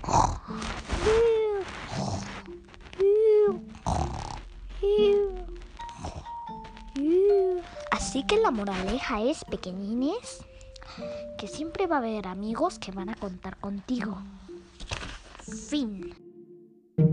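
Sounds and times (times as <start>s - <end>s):
voice imitating snoring: 0.0s - 2.5s, 3.1s - 6.4s
speech: 8.3s - 14.4s, 15.7s - 16.2s.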